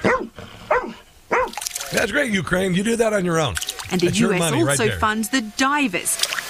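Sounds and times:
rescue dog barking: 0.0s - 1.6s
speech: 1.9s - 6.3s.

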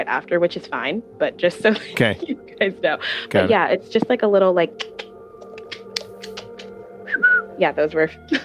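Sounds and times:
speech: 0.0s - 5.0s, 7.6s - 8.4s
person making mouth clicks as vocal tics: 4.8s - 7.3s.

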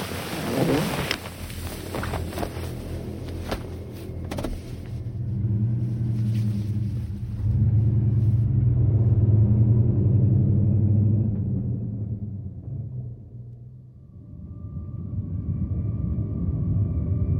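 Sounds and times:
car driving along a road into town with low engine rumble: 0.0s - 17.3s.

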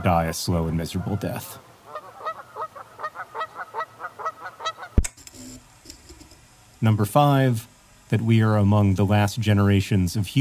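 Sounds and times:
speech: 0.0s - 1.7s, 6.8s - 10.3s
geese honking: 0.0s - 5.0s
faint hiss: 0.0s - 10.3s
sharp click: 5.0s - 6.4s.

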